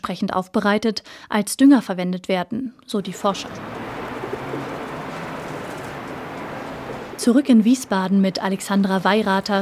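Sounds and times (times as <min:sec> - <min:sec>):
speech: 0:00.0 - 0:03.7, 0:07.2 - 0:09.6
pigeons cooing in a parking garage: 0:03.3 - 0:07.2.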